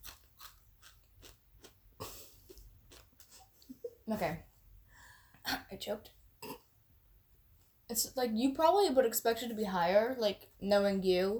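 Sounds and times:
person biting and chewing crisp fries: 0:00.0 - 0:03.3
speech: 0:04.1 - 0:04.5, 0:05.7 - 0:06.2, 0:08.0 - 0:11.3.

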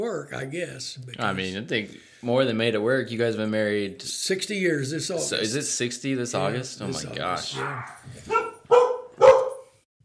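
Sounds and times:
speech: 0:00.0 - 0:08.8
border collie and Havanese dogs barking: 0:07.4 - 0:09.8.

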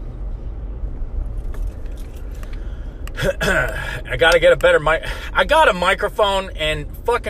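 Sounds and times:
truck cab interior road rumble while driving: 0:00.0 - 0:07.2
light rattling and jingling: 0:01.3 - 0:02.6
speech: 0:03.2 - 0:07.2.

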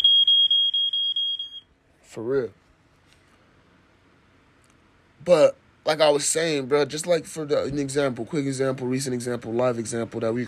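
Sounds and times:
smoke alarm sounding a shrill high-pitched tone: 0:00.0 - 0:01.8
speech: 0:02.1 - 0:02.6, 0:05.2 - 0:10.4.

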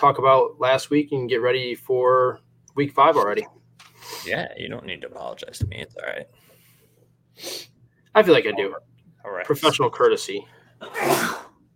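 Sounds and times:
speech: 0:00.0 - 0:06.4, 0:07.4 - 0:11.4
person sneezing from allergies in a basement: 0:10.8 - 0:11.6.

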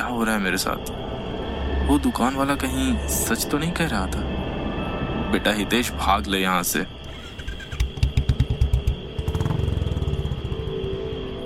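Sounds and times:
speech: 0:00.1 - 0:01.1, 0:01.9 - 0:04.4, 0:05.3 - 0:07.0
motorcycle engine struggling to accelerate: 0:07.1 - 0:11.4.

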